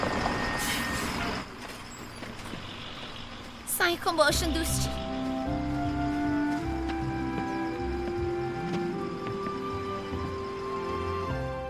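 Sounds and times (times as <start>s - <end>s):
bus engine rumble: 0.0s - 11.6s
bus air brakes hissing: 0.6s - 1.4s
speech: 3.9s - 5.0s.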